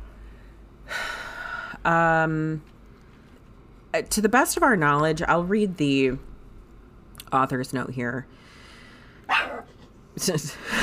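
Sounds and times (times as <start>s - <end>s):
speech: 1.8s - 2.7s, 3.9s - 6.3s, 7.3s - 8.5s, 10.2s - 10.8s
dog barking: 9.3s - 9.7s.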